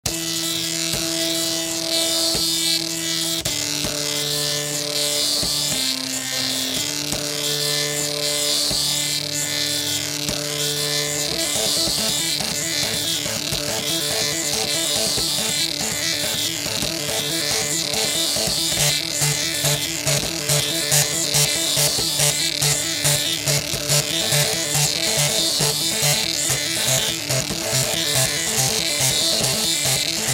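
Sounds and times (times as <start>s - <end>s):
printer arpeggio: 0.1s - 30.3s.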